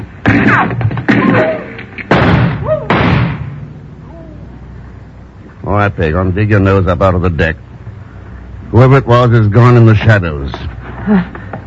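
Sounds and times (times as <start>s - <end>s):
sharp gunshots with rumbling echo: 0.0s - 3.6s
speech: 5.8s - 7.7s, 8.8s - 11.4s.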